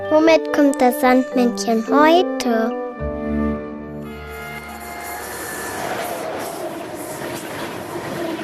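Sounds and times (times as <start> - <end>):
speech: 0.2 - 2.8
train horn blast: 4.0 - 7.5
train rumbling and rattling: 4.7 - 8.4.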